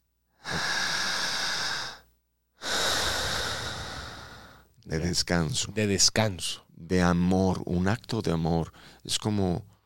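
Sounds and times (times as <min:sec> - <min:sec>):
slow long very deep breathing into the mic: 0:00.4 - 0:04.7
speech: 0:04.9 - 0:09.7.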